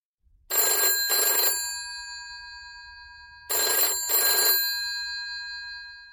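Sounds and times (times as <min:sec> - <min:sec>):
telephone ringing with electronic trilling: 0:00.5 - 0:02.4, 0:03.4 - 0:06.1.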